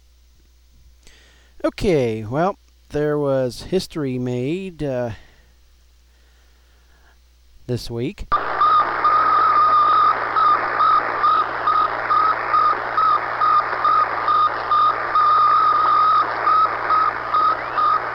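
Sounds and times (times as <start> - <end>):
static hiss: 0.9 - 18.1
speech: 1.6 - 5.2, 7.7 - 8.4
Sputnik satellite 1957 radio signal beeps: 8.3 - 18.1.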